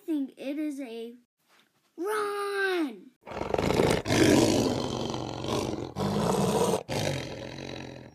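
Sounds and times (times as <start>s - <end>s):
speech: 0.2s - 1.3s, 2.0s - 4.9s
lion roaring in long rumbling bursts: 3.3s - 8.1s.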